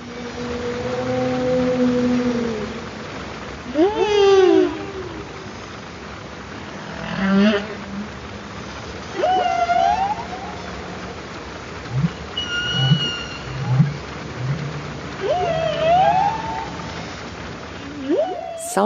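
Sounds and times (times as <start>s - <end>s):
humpback whale song recorded underwater: 0.0s - 3.1s, 3.7s - 5.5s, 9.1s - 11.2s, 11.9s - 18.8s.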